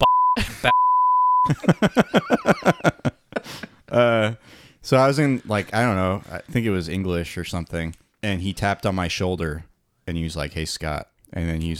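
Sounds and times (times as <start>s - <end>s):
speech: 0.0s - 0.8s, 4.9s - 11.7s
censor bleep tone over a name: 0.0s - 1.5s
rhythmic snickering laughter: 1.5s - 3.7s.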